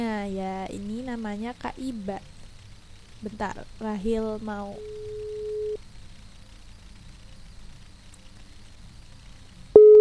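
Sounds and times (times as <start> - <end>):
speech: 0.0 - 2.4, 3.2 - 5.2
faint hum: 0.0 - 10.0
electronic telephone ringback tone: 4.8 - 5.8, 9.8 - 10.0.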